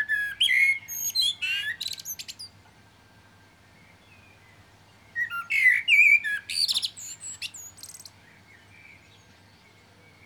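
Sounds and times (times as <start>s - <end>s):
common blackbird Turdus merula singing fluty notes: 0.0s - 2.6s, 5.2s - 10.2s.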